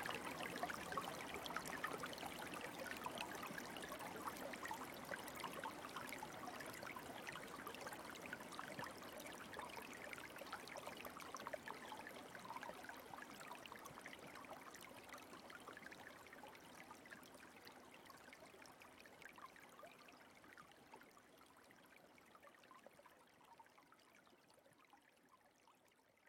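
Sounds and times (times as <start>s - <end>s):
Japanese bamboo water fountain trickling and splashing: 0.0s - 22.5s.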